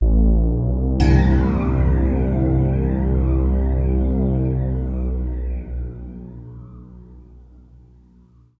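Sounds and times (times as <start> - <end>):
digital build sound effect: 1.0 - 6.6.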